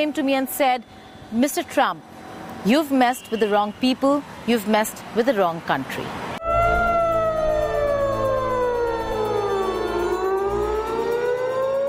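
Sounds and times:
speech: 0.0s - 6.2s
low rumble of ambient city noise in Tehran: 0.0s - 11.8s
air raid sirens wailing across Tehran, Iran: 6.4s - 11.8s.

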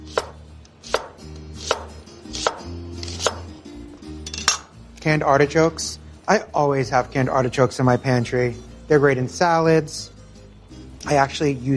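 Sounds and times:
knife slicing onion into thin half moons: 0.1s - 3.5s
speech: 5.0s - 10.2s, 11.1s - 11.7s.

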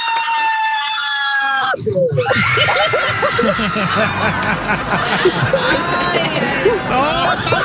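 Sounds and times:
woman screaming in mock terror: 0.1s - 3.8s
laughter: 2.3s - 7.6s.

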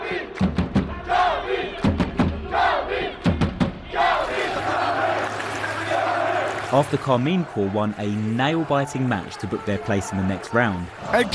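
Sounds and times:
crowd chanting and roaring in an esports tournament arena: 0.0s - 11.3s
rhythmic clapping or stomping of an esports arena crowd: 0.2s - 1.2s, 1.8s - 6.8s
speech: 6.7s - 11.3s.

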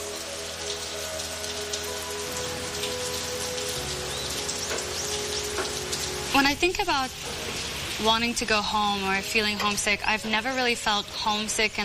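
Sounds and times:
scattered drips: 0.0s - 11.8s
steady rain pattering on a hard surface: 0.0s - 11.8s
faint bird chirping: 4.0s - 5.8s
speech: 6.4s - 7.4s, 8.0s - 11.8s.

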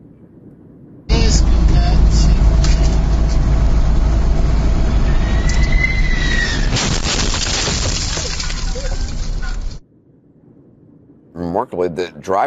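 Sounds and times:
heavy continuous roar of landing jet: 1.1s - 6.8s
rising whine: 1.1s - 7.4s
rumbling road noise from truck: 1.1s - 9.8s
landing gear of Boeing 767 slamming onto truck: 1.5s - 9.8s
speech: 11.7s - 12.4s.

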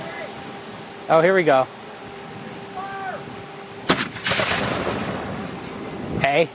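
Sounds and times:
faint hum: 0.0s - 6.5s
speech: 1.1s - 1.8s, 6.3s - 6.5s
cannon blast with rumble: 3.9s - 5.6s.

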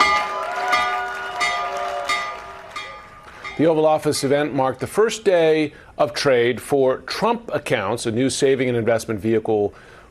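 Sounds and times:
stock exchange opening bell ringing: 0.0s - 4.6s
speech: 3.6s - 10.0s.

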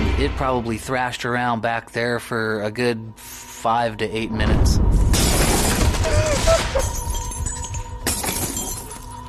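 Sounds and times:
speech: 0.2s - 5.0s
kitchen window glass breaking: 5.1s - 9.1s
falling glass debris clinking: 5.1s - 9.2s.

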